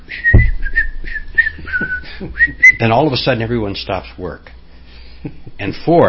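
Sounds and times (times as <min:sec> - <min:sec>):
person whistling a tune: 0:00.0 - 0:02.8
speech: 0:02.2 - 0:04.6, 0:05.2 - 0:06.0.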